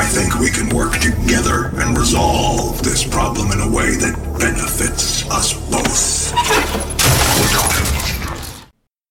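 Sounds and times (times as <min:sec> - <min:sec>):
speech: 0:00.1 - 0:07.9
computer terminal smashed in a video game: 0:06.5 - 0:08.7.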